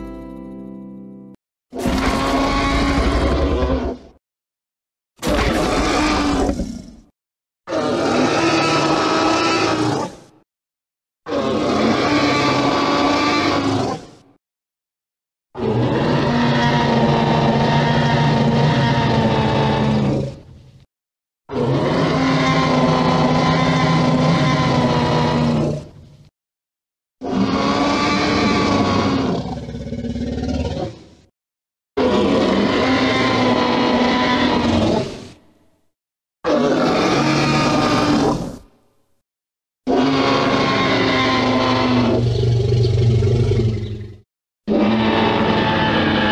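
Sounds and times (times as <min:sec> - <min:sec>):
Tyrannosaurus rex sound effect: 0:01.8 - 0:04.2, 0:05.2 - 0:10.3, 0:11.3 - 0:14.2, 0:15.6 - 0:20.5, 0:21.5 - 0:26.0, 0:27.2 - 0:31.1, 0:32.0 - 0:35.4, 0:36.5 - 0:38.7, 0:39.9 - 0:46.2.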